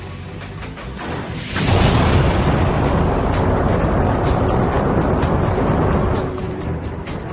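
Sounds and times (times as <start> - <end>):
space shuttle liftoff roar: 1.0 - 6.3.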